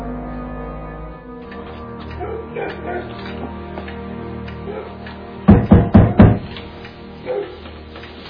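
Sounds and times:
knocking on a door: 0:05.5 - 0:06.5.

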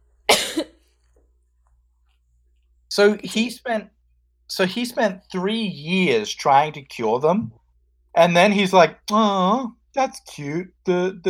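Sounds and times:
person coughing after inhaling spit: 0:00.3 - 0:00.8
speech: 0:03.0 - 0:07.6, 0:08.2 - 0:11.2.

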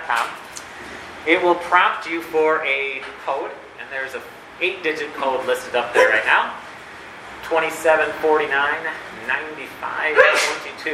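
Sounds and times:
speech: 0:00.1 - 0:00.4, 0:01.2 - 0:06.6, 0:07.5 - 0:10.9
sneeze: 0:10.2 - 0:10.6.

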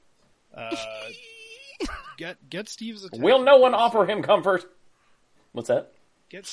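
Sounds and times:
speech: 0:00.5 - 0:04.8, 0:05.5 - 0:06.5
person imitating a child crying and wailing: 0:00.6 - 0:01.8.

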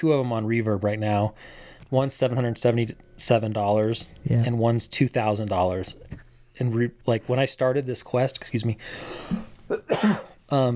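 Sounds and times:
speech: 0:00.0 - 0:10.7
throat-clearing cough from a tickle in the throat: 0:09.3 - 0:10.4.

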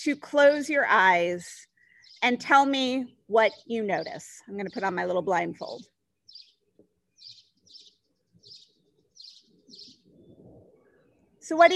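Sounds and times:
speech: 0:00.0 - 0:05.9, 0:11.5 - 0:11.7
murmur of other birds: 0:01.6 - 0:11.7
bright bird chirps: 0:03.4 - 0:11.7.

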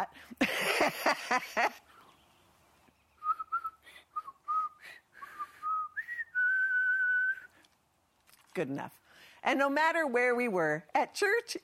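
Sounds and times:
speech: 0:00.0 - 0:01.8, 0:08.6 - 0:11.6
person whistling a short melodic family call tune: 0:03.2 - 0:07.5.

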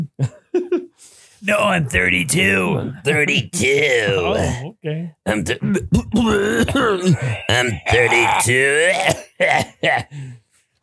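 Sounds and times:
speech: 0:01.4 - 0:10.4
harsh raspy coughs: 0:05.6 - 0:10.3.

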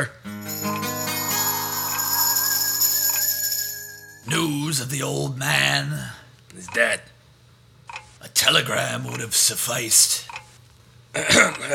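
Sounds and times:
grandfather clock chiming while being adjusted at night: 0:00.4 - 0:04.5
speech: 0:04.2 - 0:07.1, 0:08.4 - 0:10.4, 0:11.1 - 0:11.7.

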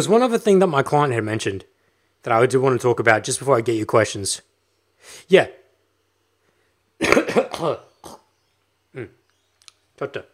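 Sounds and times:
speech: 0:00.0 - 0:05.6, 0:07.0 - 0:08.2, 0:09.0 - 0:09.2, 0:10.0 - 0:10.3
person clearing phlegm from the throat: 0:07.0 - 0:08.3, 0:09.0 - 0:09.2.

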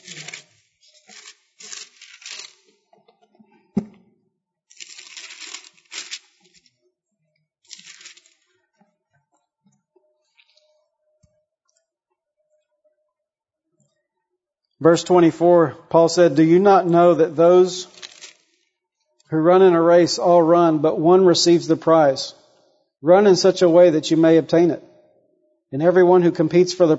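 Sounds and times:
book paper pages turning: 0:00.0 - 0:02.8, 0:04.7 - 0:06.7, 0:07.7 - 0:08.5, 0:17.8 - 0:18.6
speech: 0:14.8 - 0:18.0, 0:19.3 - 0:22.4, 0:23.0 - 0:24.9, 0:25.7 - 0:26.9.

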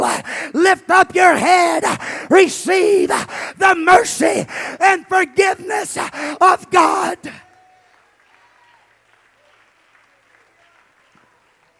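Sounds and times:
speech: 0:00.5 - 0:07.4
congregation clapping hands: 0:07.3 - 0:11.7.

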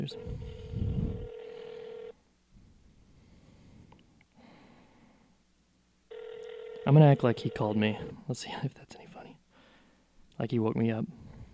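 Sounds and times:
speech: 0:00.0 - 0:00.6, 0:06.9 - 0:09.1, 0:10.4 - 0:11.2
low hiss: 0:00.0 - 0:11.5
phone ringback tone: 0:00.1 - 0:02.2, 0:06.1 - 0:08.2.

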